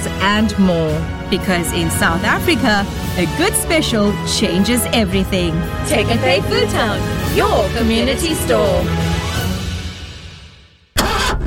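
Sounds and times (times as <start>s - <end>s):
speech: 0.2s - 9.1s
car engine failing to start: 11.0s - 11.4s.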